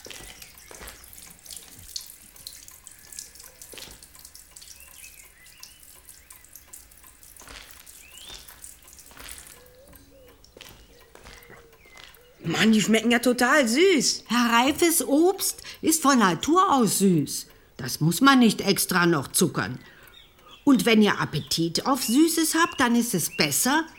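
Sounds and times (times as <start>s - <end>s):
tap water running into a sink while strawberries are washed: 0.0s - 10.0s
small drips of water: 0.0s - 23.9s
speech: 12.5s - 19.9s, 20.7s - 23.9s.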